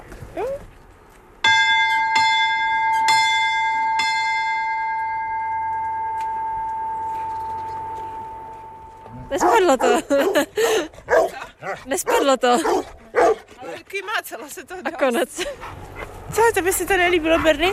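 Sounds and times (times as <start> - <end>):
large swinging bell ringing: 1.4 - 10.0
speech: 9.7 - 12.9, 13.9 - 17.7.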